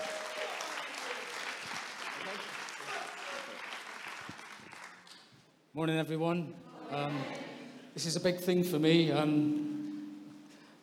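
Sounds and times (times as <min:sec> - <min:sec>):
crowd applause: 0:00.0 - 0:05.2
speech: 0:05.8 - 0:09.6.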